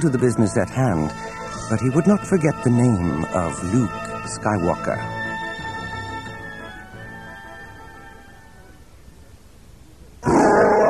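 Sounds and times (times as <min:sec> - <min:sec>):
speech: 0:00.0 - 0:05.2
Wookiee roaring in rage: 0:10.2 - 0:10.8.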